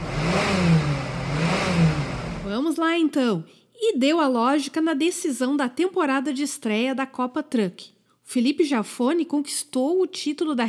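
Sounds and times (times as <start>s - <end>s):
car engine accelerating and revving: 0.0s - 2.5s
speech: 2.7s - 10.6s.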